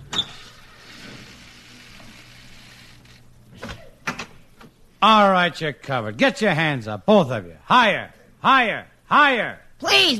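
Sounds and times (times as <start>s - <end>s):
front door of an estate creaking open: 0.0s - 4.5s
speech: 5.0s - 10.1s.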